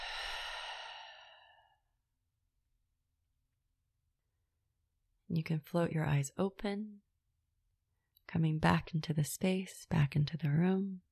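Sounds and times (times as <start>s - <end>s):
long breathy exhale during guided mindfulness meditation: 0.0s - 1.8s
speech: 5.3s - 7.1s, 8.3s - 11.0s.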